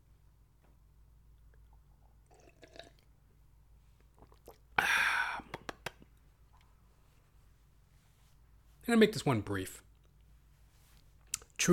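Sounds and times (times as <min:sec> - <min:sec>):
low hum: 0:00.0 - 0:11.7
person sipping water: 0:01.5 - 0:03.2, 0:04.0 - 0:05.8
person gulping and swallowing water: 0:01.6 - 0:03.1, 0:04.0 - 0:06.1
speech: 0:08.9 - 0:09.9.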